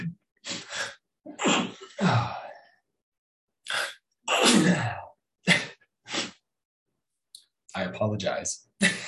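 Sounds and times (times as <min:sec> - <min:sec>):
person with seasonal allergies sneezing: 0:01.3 - 0:02.4, 0:03.7 - 0:06.4
speech: 0:02.0 - 0:02.4, 0:07.9 - 0:09.0.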